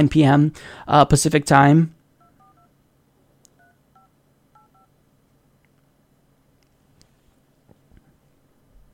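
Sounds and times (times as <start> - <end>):
speech: 0.0 - 2.0
steady low hum: 0.0 - 8.9
telephone keypad dialing tones: 2.2 - 2.7, 3.6 - 4.9.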